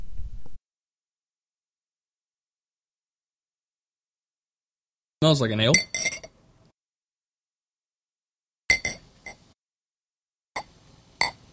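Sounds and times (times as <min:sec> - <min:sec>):
speech: 0:05.2 - 0:06.1
bottle clinking against a glass while pouring beer: 0:05.7 - 0:06.3, 0:08.7 - 0:09.4, 0:10.6 - 0:11.4.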